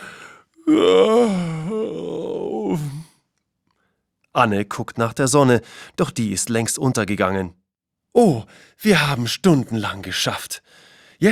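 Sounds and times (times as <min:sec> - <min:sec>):
several people yawning out loud: 0:00.6 - 0:03.1
speech: 0:04.4 - 0:11.3.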